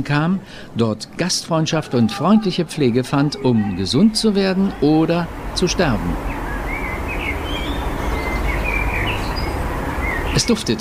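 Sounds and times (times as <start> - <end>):
speech: 0.0 - 6.4, 10.4 - 10.7
blackbird song echoing through a valley near Davos Switzerland: 5.9 - 10.7.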